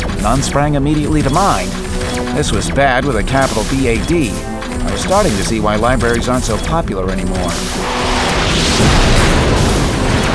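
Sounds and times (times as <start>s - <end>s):
speech: 0.2s - 8.0s
explosion with rumbling low end and crackling debris: 7.8s - 10.3s.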